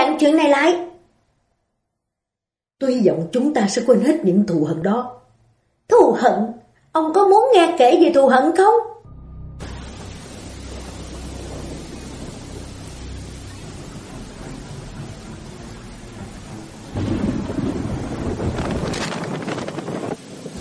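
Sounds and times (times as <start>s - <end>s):
speech: 0.2s - 0.9s, 2.8s - 5.2s, 5.9s - 8.9s
heavy rain drumming on the roof of a speeding car: 9.6s - 20.5s.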